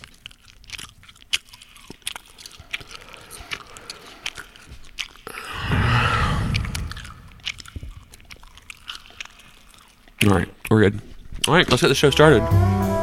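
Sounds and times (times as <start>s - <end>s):
wet gum chewing into a microphone for ASMR: 0.0s - 11.8s
speech: 10.3s - 12.9s.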